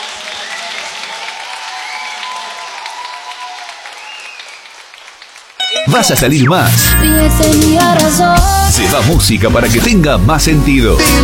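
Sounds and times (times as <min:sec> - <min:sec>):
audience applause: 0:00.0 - 0:06.4
speech: 0:05.8 - 0:11.2.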